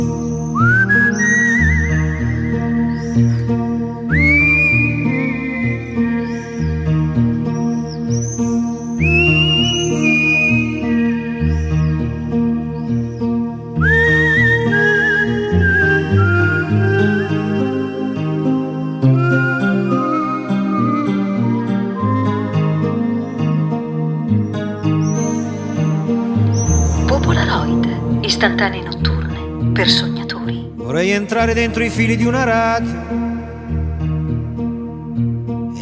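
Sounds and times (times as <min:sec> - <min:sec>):
full steady musical accompaniment: 0:00.0 - 0:35.8
man whistling a bright melody: 0:00.3 - 0:03.3, 0:04.1 - 0:12.0, 0:13.8 - 0:18.4, 0:19.0 - 0:23.5
speech: 0:31.4 - 0:33.1.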